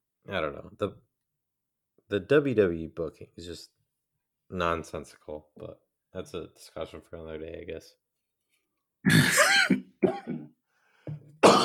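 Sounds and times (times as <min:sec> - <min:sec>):
speech: 0:00.3 - 0:01.1, 0:02.1 - 0:03.8, 0:04.5 - 0:08.0, 0:09.0 - 0:09.6
person clearing throat: 0:09.1 - 0:10.6, 0:11.4 - 0:11.6
person coughing: 0:09.1 - 0:10.6, 0:11.4 - 0:11.6.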